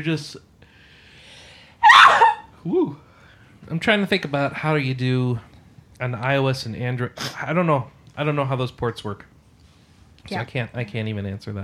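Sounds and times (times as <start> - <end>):
speech: 0.0 - 0.5, 2.6 - 9.3, 10.2 - 11.6
faint quiet breathing: 0.6 - 1.8, 3.0 - 3.6
loud breathy sneeze: 1.8 - 2.4.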